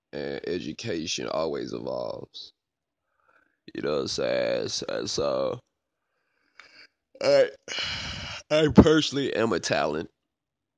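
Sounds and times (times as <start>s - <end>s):
speech: 0.1s - 2.6s, 3.7s - 5.6s, 7.2s - 10.2s
person yawning: 7.2s - 8.5s.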